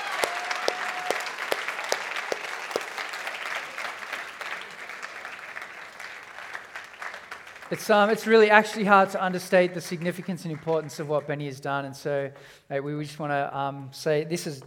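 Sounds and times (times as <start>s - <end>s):
crowd applauding: 0.0s - 11.3s
speech: 7.7s - 14.6s.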